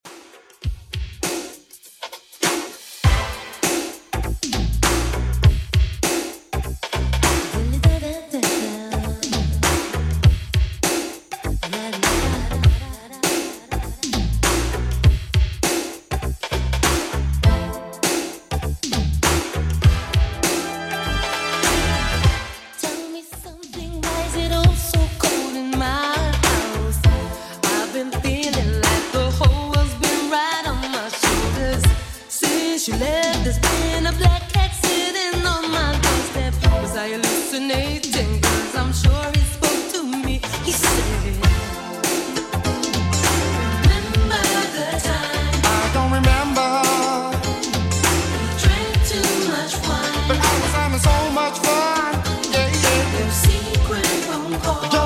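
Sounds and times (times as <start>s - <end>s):
80s beat at 100 bpm: 0.0s - 55.0s.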